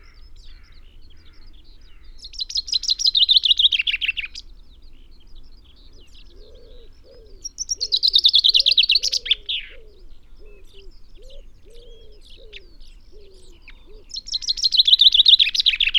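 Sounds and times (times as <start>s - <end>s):
common chaffinch Fringilla coelebs singing: 0.0s - 15.9s
soft low coos of another bird: 5.9s - 15.9s.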